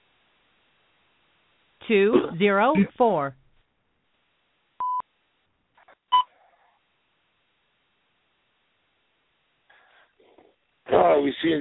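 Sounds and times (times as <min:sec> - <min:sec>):
speech: 0:01.9 - 0:03.4, 0:11.2 - 0:11.5
electronic touch-tone beeps: 0:04.8 - 0:05.0.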